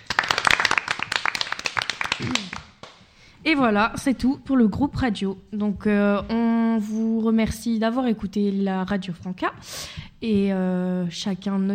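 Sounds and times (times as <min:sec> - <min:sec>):
group of women clapping: 0:00.0 - 0:03.1
speech: 0:02.2 - 0:02.6, 0:03.4 - 0:11.7.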